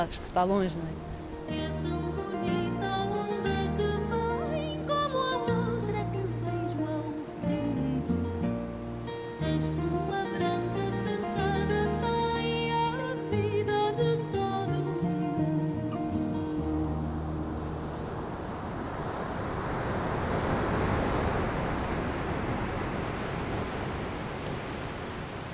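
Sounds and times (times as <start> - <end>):
speech: 0.0 - 2.1
ocean waves breaking on the shore of the sea at Sagres: 0.0 - 25.5.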